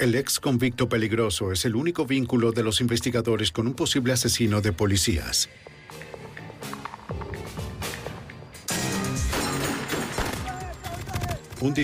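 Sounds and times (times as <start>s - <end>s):
speech: 0.0s - 6.0s, 11.6s - 11.8s
gunshots fired in quick irregular volleys: 9.1s - 11.8s.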